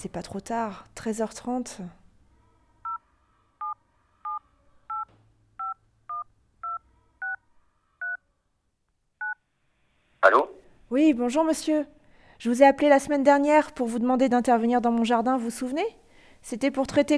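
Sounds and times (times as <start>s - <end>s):
speech: 0.0s - 2.0s, 10.2s - 17.1s
telephone keypad touch-tones dialing a number: 3.6s - 7.4s.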